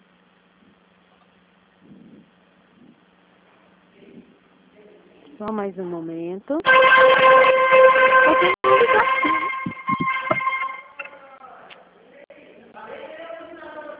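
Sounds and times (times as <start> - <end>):
speech: 5.4 - 7.4, 8.3 - 9.4
horn honking: 6.6 - 11.2.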